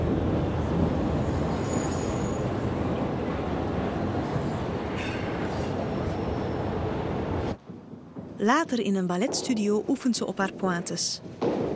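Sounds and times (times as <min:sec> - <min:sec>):
overcrowded metro train rumbling, heard from inside the car: 0:00.0 - 0:07.6
faint high-pitched metro train wheel squeals: 0:01.5 - 0:02.5
speech: 0:08.4 - 0:11.6.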